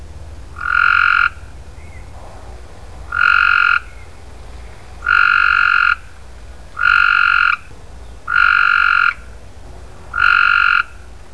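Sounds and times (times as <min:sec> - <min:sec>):
frog calling: 0:00.5 - 0:02.1, 0:03.1 - 0:04.2, 0:05.0 - 0:09.4, 0:10.1 - 0:11.1.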